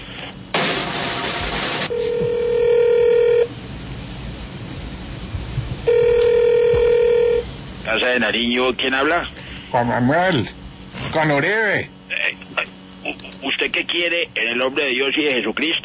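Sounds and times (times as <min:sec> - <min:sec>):
short burst of hiss on a telephone menu line: 0:00.0 - 0:02.0
steady electronic telephone menu line tone: 0:01.8 - 0:03.5, 0:05.9 - 0:07.4
speech: 0:08.0 - 0:12.0, 0:13.6 - 0:15.8.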